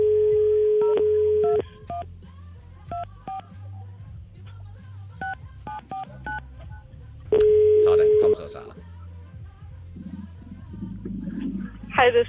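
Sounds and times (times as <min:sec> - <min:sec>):
telephone dial tone: 0:00.0 - 0:02.0, 0:07.4 - 0:08.4
low hum: 0:00.0 - 0:12.2
touch-tone keypress beeps dialing a phone number: 0:00.4 - 0:02.0
speech: 0:12.1 - 0:12.2.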